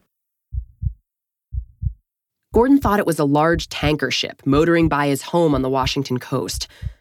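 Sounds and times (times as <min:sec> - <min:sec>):
heartbeat thumping in lub-dub rhythm: 0:00.5 - 0:06.9
speech: 0:02.5 - 0:06.9.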